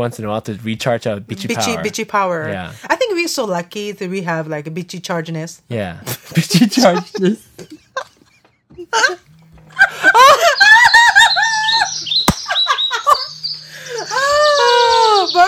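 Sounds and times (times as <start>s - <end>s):
speech: 0.0s - 7.7s
laughter: 1.5s - 2.0s, 6.0s - 15.4s
bird chirping: 9.5s - 15.4s.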